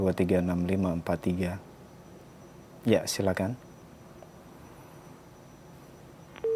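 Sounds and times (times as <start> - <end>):
speech: 0.0 - 1.7, 2.8 - 3.7
faint steady telephone line hiss: 0.4 - 6.5
telephone busy tone after call disconnects: 3.7 - 6.5.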